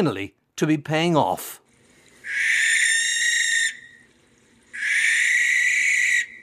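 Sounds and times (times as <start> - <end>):
speech: 0.0 - 1.6
owl giving rasping screeches at night: 2.2 - 4.0, 4.7 - 6.4.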